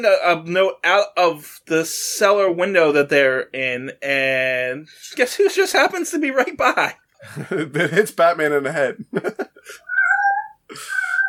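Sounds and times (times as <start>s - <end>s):
speech: 0.0s - 9.9s
laughter: 7.2s - 9.8s
cat meowing loudly: 9.8s - 11.2s.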